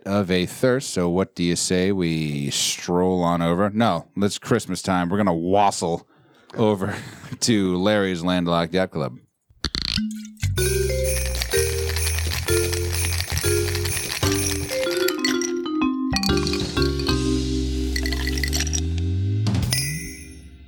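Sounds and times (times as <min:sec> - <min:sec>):
speech: 0:00.1 - 0:09.2
festive tune with stepping bass notes: 0:10.5 - 0:20.6
sleigh bells ringing: 0:10.6 - 0:19.0, 0:19.6 - 0:20.6.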